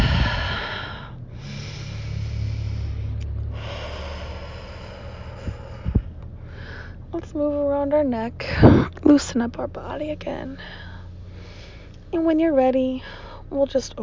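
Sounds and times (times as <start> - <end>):
slow deep breathing in a guided relaxation exercise: 0.0 - 7.2, 10.6 - 12.1, 13.0 - 13.5
speech: 7.2 - 10.9, 12.1 - 14.0.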